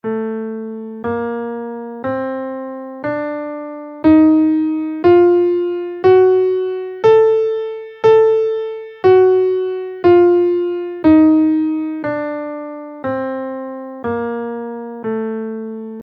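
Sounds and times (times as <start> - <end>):
guitar playing a Locrian bb7 scale in A minor: 1.2 - 15.0.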